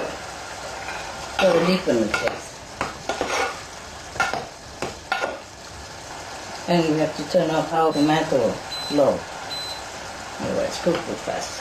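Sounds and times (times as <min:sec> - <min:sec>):
mushrooms sizzling in a pan with balsamic vinegar: 0:00.0 - 0:11.5
utensil stirring mushrooms in a pan: 0:00.7 - 0:02.4, 0:03.0 - 0:04.5
speech: 0:01.4 - 0:02.4, 0:06.7 - 0:09.4, 0:10.4 - 0:11.5.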